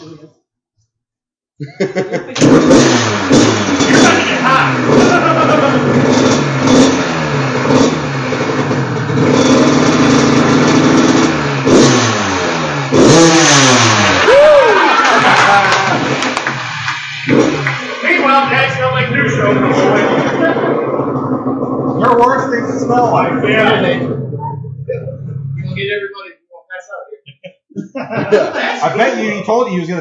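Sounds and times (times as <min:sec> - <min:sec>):
laughter: 0:01.6 - 0:02.5, 0:03.8 - 0:06.0, 0:13.9 - 0:25.4, 0:27.2 - 0:29.9
speech: 0:01.6 - 0:05.2, 0:22.9 - 0:24.3, 0:28.3 - 0:29.9
dirt bike engine starting and revving: 0:02.4 - 0:25.8.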